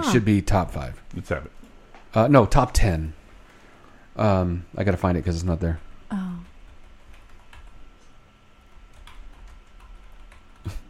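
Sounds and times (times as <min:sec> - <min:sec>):
low hum: 0:00.0 - 0:10.8
speech: 0:00.1 - 0:03.2, 0:04.2 - 0:06.3
computer keyboard keys clacking: 0:06.7 - 0:08.1, 0:08.7 - 0:10.8.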